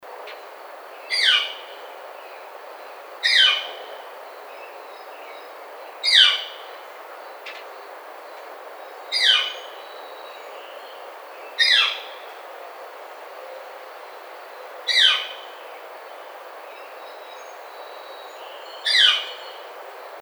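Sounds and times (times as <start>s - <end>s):
Northern Flicker: 1.1s - 1.8s, 3.2s - 3.9s, 6.0s - 6.7s, 9.1s - 9.8s, 11.6s - 12.3s, 14.9s - 15.6s, 18.8s - 19.6s.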